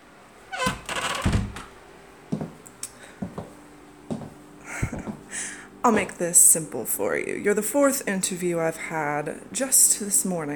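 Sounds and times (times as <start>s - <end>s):
office door pushed shut: 0.5s - 1.7s
speech: 5.8s - 10.5s.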